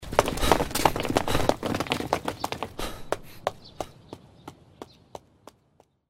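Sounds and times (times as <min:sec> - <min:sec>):
many people running on a road: 0:00.0 - 0:06.0.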